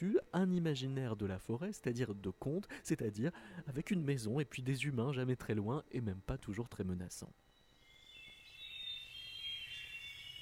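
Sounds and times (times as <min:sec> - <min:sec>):
speech: 0:00.0 - 0:07.4
chorus of birds singing in a jungle: 0:07.5 - 0:10.3.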